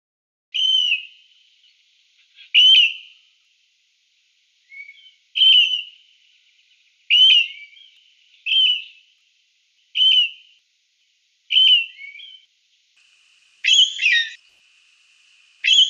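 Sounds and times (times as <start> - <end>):
grey currawong whistled notes: 0.6 - 3.2, 4.6 - 6.4, 7.1 - 9.0, 9.9 - 10.6, 11.5 - 12.5, 13.6 - 14.6, 15.2 - 15.8.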